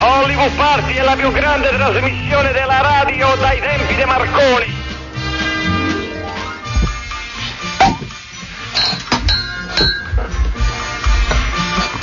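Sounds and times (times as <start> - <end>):
steady musical background: 0.0 - 12.0
speech: 0.5 - 4.8
glasses clinking together in a toast: 8.8 - 10.1.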